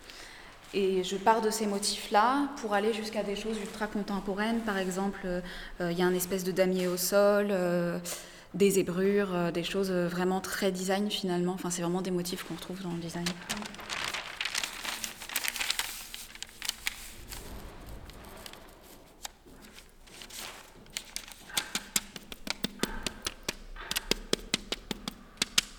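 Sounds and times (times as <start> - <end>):
thin clay sheets rustling and scraping while being handled: 0.5 - 7.5, 12.2 - 25.7
speech: 0.7 - 13.8
sharp little taps and clicks from cutting clay sheets: 21.0 - 25.7.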